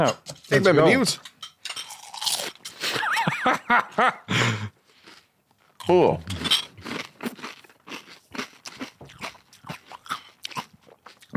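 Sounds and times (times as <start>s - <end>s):
speech: 0.0s - 1.3s, 3.4s - 4.6s, 5.9s - 6.4s
laughter: 2.8s - 4.7s
crunching and chewing cornflakes soaked in gin: 4.9s - 11.3s.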